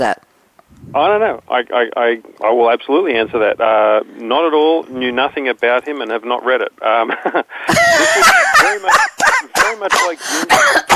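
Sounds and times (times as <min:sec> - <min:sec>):
speech: 0:00.0 - 0:10.9
person laughing convulsively: 0:07.1 - 0:10.9
person coughing: 0:09.3 - 0:10.9.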